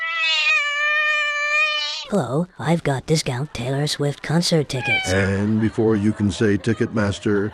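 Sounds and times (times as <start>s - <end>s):
cat meowing: 0.0s - 2.1s, 4.7s - 5.2s
speech: 2.1s - 7.5s
laughter: 4.8s - 7.5s.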